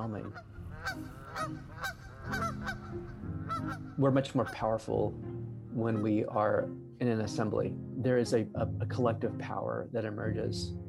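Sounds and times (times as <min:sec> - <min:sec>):
speech: 0:00.0 - 0:02.4, 0:04.0 - 0:10.8
large flock of geese honking: 0:00.0 - 0:04.8.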